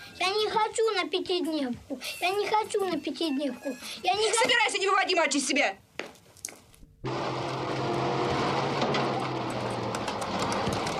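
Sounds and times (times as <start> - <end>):
speech: 0.2 - 6.2
bus engine starting up and running: 7.1 - 10.9.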